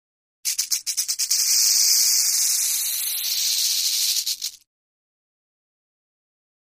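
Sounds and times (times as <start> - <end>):
rattlesnake rattling: 0.5 - 4.6.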